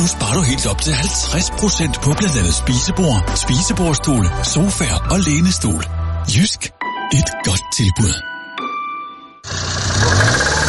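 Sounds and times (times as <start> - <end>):
speech: 0.0 - 8.3
car engine starting and running rough: 9.5 - 10.6.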